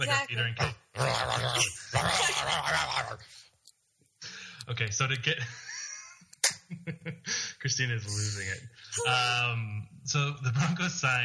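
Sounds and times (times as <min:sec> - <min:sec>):
people imitating a dog growl with their voices: 0:00.0 - 0:03.3
speech: 0:00.0 - 0:03.5, 0:04.7 - 0:05.7, 0:06.8 - 0:11.2
snickering laughter: 0:05.5 - 0:07.6.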